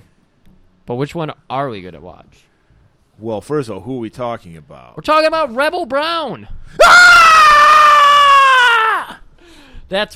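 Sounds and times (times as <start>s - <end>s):
speech: 0.9s - 2.5s, 3.2s - 7.6s, 9.9s - 10.1s
high-pitched rebel yell: 6.8s - 9.2s.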